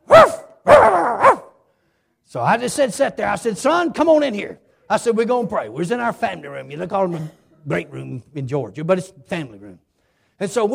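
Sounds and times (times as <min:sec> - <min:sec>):
human voice imitating a dog barking: 0:00.0 - 0:01.5
speech: 0:02.3 - 0:10.7.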